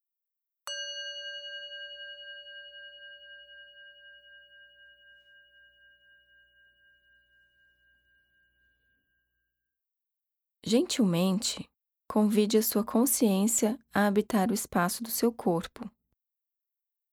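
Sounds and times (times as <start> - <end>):
meditation bell struck and ringing: 0.7 - 9.4
speech: 10.7 - 16.0.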